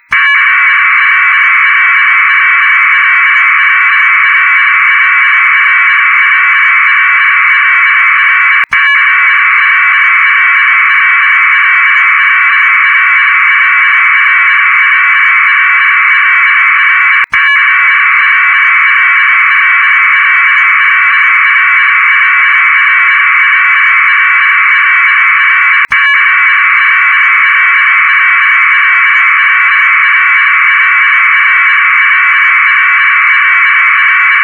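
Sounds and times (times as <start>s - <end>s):
preemphasized packet radio data bursts: 0.0s - 34.4s.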